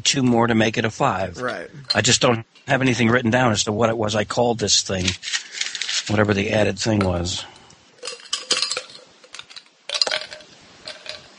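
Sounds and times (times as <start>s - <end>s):
speech: 0.0s - 7.5s
ice cubes clinking and rattling against a glass: 8.0s - 11.3s.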